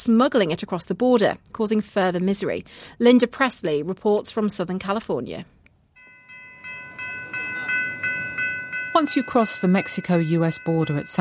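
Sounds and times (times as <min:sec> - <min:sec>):
speech: 0:00.0 - 0:05.6, 0:09.0 - 0:11.1
tram rolling on rails from the San Isidro border crossing to San Diego: 0:06.2 - 0:11.1.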